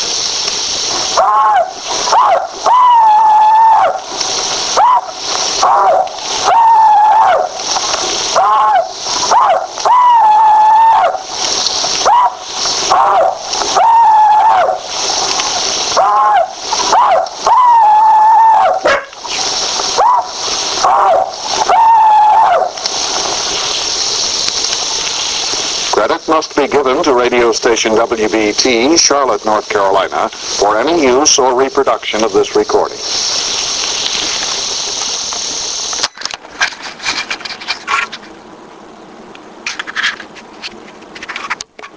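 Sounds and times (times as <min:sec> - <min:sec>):
steady hiss: 0:00.0 - 0:41.9
old veteran giving a rebel yell with shrill warbling whoops: 0:01.2 - 0:04.1, 0:04.7 - 0:07.6, 0:08.3 - 0:11.2, 0:12.0 - 0:14.9, 0:16.0 - 0:19.1, 0:20.0 - 0:22.8
speech: 0:27.7 - 0:33.3.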